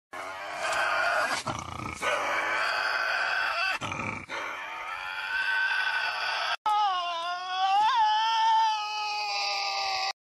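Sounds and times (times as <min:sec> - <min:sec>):
Tasmanian devil: 0:00.2 - 0:10.1.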